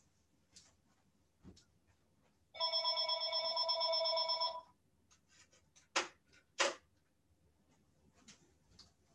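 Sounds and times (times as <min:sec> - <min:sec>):
telephone ringing: 0:02.5 - 0:04.8.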